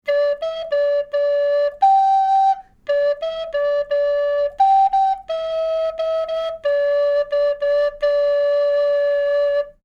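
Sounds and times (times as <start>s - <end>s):
alto recorder: 0.0s - 9.8s.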